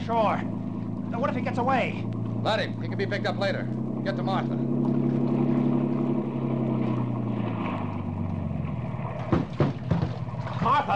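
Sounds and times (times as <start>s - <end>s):
motorboat engine droning on water: 0.0s - 10.9s
water splashing: 0.0s - 10.9s
speech: 0.1s - 4.8s, 10.6s - 10.9s
sharp knocks: 9.2s - 10.9s.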